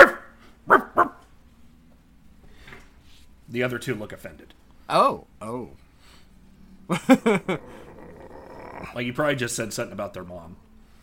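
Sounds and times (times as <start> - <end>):
speech: 3.5 - 5.8, 6.9 - 7.8, 8.8 - 10.6
laughter: 6.9 - 7.8
gnoll dog-like creature barking: 7.4 - 9.0.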